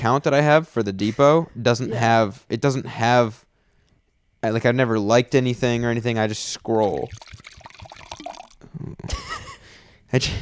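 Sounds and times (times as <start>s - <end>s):
speech: 0.0s - 3.5s, 4.4s - 7.4s, 8.8s - 9.4s, 10.1s - 10.3s
wine pouring into a glass: 6.5s - 8.6s.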